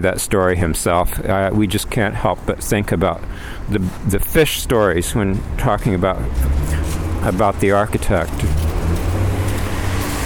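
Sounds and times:
speech: 0:00.0 - 0:08.5
big truck passing by on street: 0:04.3 - 0:10.2.

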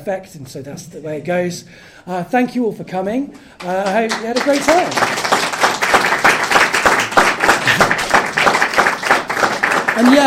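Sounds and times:
speech: 0:00.0 - 0:05.5, 0:10.0 - 0:10.2
audience applauding at the end of a talk event: 0:03.6 - 0:10.2.

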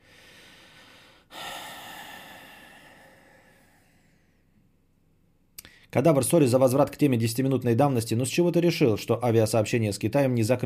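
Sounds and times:
person exhaling into microphone: 0:00.0 - 0:04.2
speech: 0:06.0 - 0:10.6.

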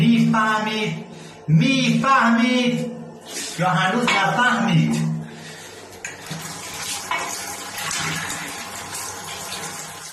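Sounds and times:
speech: 0:00.4 - 0:05.1
drinking tap water running into a sink or container in Ahvaz Iran: 0:05.9 - 0:10.1.

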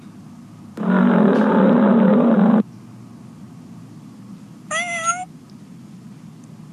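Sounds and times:
higher-pitched lion snarling cry: 0:00.8 - 0:02.6
lion growling: 0:00.8 - 0:02.6.

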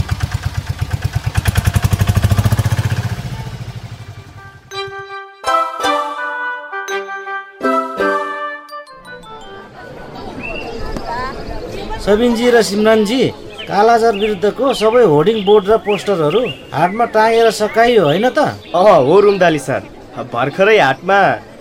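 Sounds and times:
tempo three-wheeler engine starting: 0:00.0 - 0:04.4
ringing chime-like melody of clear tones: 0:04.4 - 0:10.7
speech: 0:12.1 - 0:21.5.

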